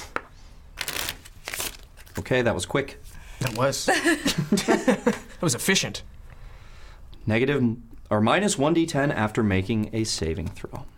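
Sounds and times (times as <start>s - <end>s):
luck deck of cards shuffling: 0.8s - 2.2s
speech: 2.2s - 6.2s, 7.2s - 10.9s
laughter: 3.9s - 5.4s.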